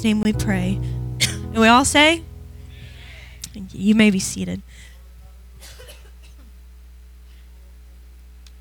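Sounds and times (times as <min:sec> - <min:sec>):
speech: 0:00.0 - 0:02.3, 0:03.6 - 0:04.9
low electrical hum: 0:00.0 - 0:08.6
person coughing in harsh bursts: 0:01.2 - 0:01.5, 0:05.6 - 0:06.5.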